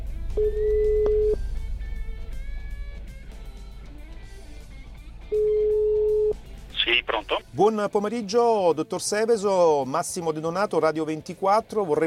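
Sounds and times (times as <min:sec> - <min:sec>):
speech: 0:00.4 - 0:00.9, 0:07.5 - 0:12.0
ringback tone of an outgoing telephone call: 0:00.4 - 0:01.4, 0:05.3 - 0:06.3.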